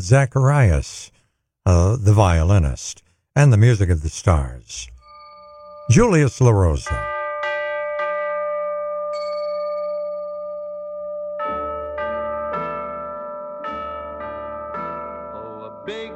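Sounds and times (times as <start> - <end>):
speech: 0.0 - 4.9, 5.9 - 7.2
bright chiming bells in a musical recording: 4.9 - 16.1.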